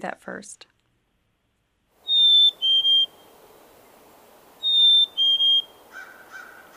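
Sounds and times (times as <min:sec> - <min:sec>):
Black-capped Chickadee Hey Sweetie song in New York: 0:02.0 - 0:03.3, 0:04.6 - 0:05.8.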